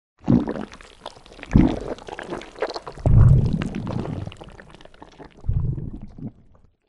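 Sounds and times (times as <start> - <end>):
swallow: 0.2 - 6.8.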